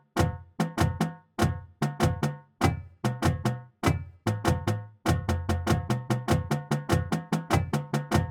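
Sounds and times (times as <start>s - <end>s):
drumline warmup flams: 0.2s - 8.2s.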